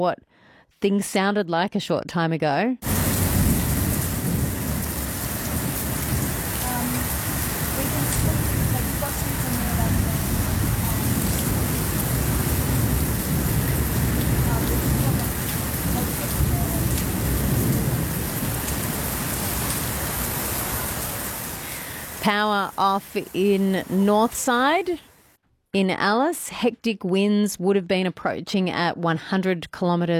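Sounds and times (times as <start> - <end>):
speech: 0.0 - 3.0, 22.2 - 25.1, 25.7 - 30.1
deep rumbles of thunder: 2.8 - 24.4
heavy rain pounding down in a thunderstorm: 2.8 - 25.3.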